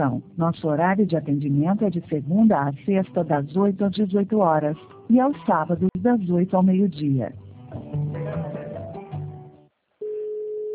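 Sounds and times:
speech: 0.0s - 7.9s
telephone line tone while placing a call: 10.0s - 10.7s.

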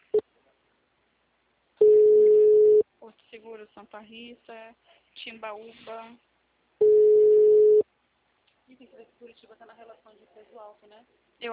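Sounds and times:
telephone short beep: 1.8s - 2.8s, 6.8s - 7.8s
speech: 3.6s - 6.3s, 8.8s - 11.5s.

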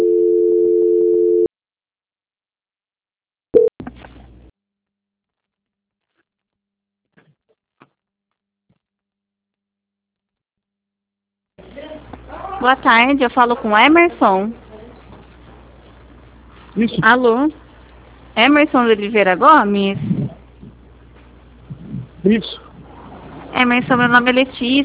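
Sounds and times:
steady electronic telephone tone as a phone call is transferred: 0.0s - 1.5s
speech: 12.6s - 14.6s, 16.8s - 17.6s, 18.4s - 20.2s, 22.2s - 22.5s, 23.6s - 24.8s.

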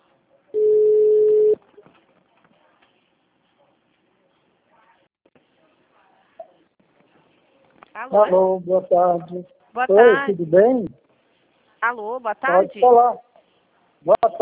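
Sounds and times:
phone incoming call electronic tone: 0.6s - 1.6s
speech: 8.0s - 11.0s, 11.8s - 13.2s, 14.0s - 14.4s.

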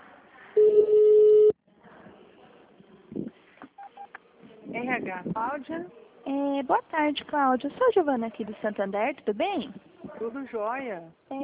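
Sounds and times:
short beeps: 0.6s - 1.6s
telephone ringing tone on a hospital's phone line: 0.6s - 1.6s
speech: 5.1s - 11.4s.

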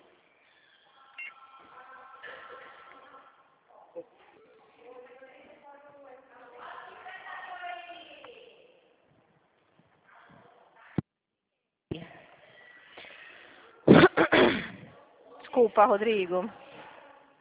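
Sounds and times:
person coughing: 13.9s - 14.9s
speech: 15.6s - 16.6s.

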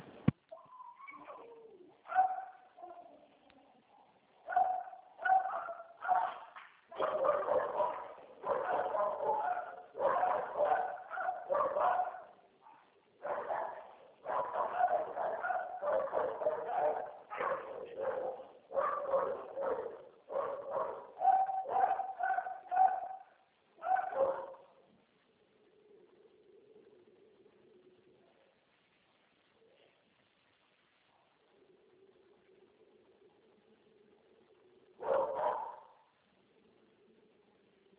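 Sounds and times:
several dogs barking: 2.0s - 3.2s, 4.0s - 24.8s, 35.0s - 36.1s.

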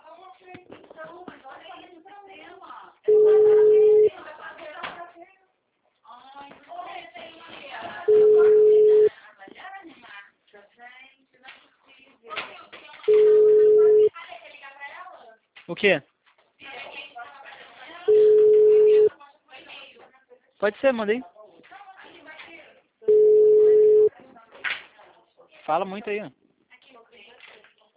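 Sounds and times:
telephone ringing tone as a call is placed: 3.1s - 4.1s, 8.1s - 9.1s, 13.1s - 14.1s, 18.1s - 19.1s, 23.1s - 24.1s
speech: 15.8s - 16.1s, 20.6s - 21.3s, 25.7s - 26.4s.

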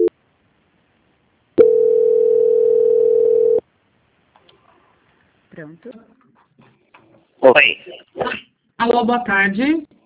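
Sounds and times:
steady single-pitched telephone line tone while a call is being transferred: 1.6s - 3.6s
speech: 5.6s - 6.2s, 7.4s - 9.9s.

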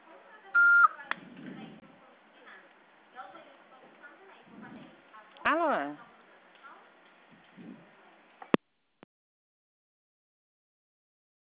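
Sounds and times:
faint low voices: 0.0s - 8.5s
answering machine beep before a message is recorded: 0.6s - 1.0s.

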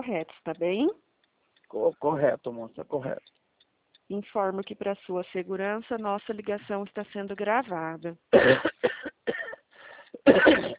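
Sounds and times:
speech: 0.0s - 1.1s, 1.7s - 3.4s, 4.1s - 9.2s, 10.2s - 10.7s
rough coughs close to a phone line: 8.3s - 10.7s.

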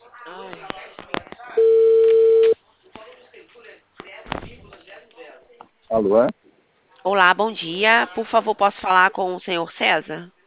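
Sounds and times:
speech: 0.2s - 0.8s, 6.0s - 6.4s, 7.0s - 10.4s
telephone ringback tone while placing a call: 1.6s - 2.6s.

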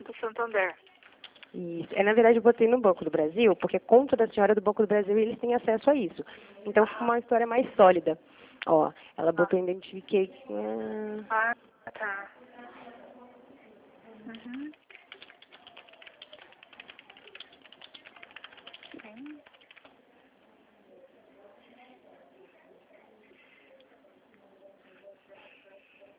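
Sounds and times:
quieter noise: 0.0s - 26.1s
speech: 0.2s - 0.9s, 1.5s - 12.7s, 14.2s - 14.8s
woman typing on a computer keyboard: 0.9s - 1.6s, 14.3s - 20.0s.

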